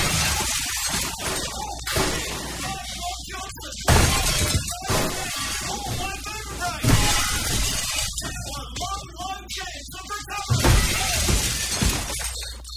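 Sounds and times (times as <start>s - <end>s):
glass door shattering: 0.0s - 9.0s, 10.3s - 12.7s.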